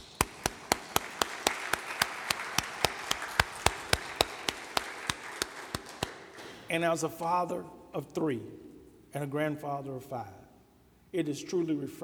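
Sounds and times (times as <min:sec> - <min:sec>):
audience group clapping in a steady brisk rhythm: 0:00.0 - 0:06.7
speech: 0:06.7 - 0:10.4, 0:11.1 - 0:12.0.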